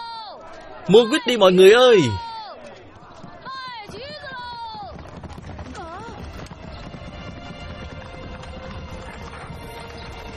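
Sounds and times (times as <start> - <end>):
speech: 0.8 - 2.3
hooves of a horse-drawn carriage clip-clopping: 3.0 - 10.3.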